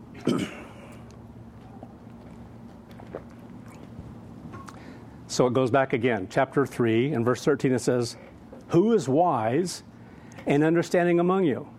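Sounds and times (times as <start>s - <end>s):
room hum: 0.0s - 11.7s
speech: 0.3s - 0.6s, 5.4s - 11.7s
person sipping water: 3.0s - 4.0s.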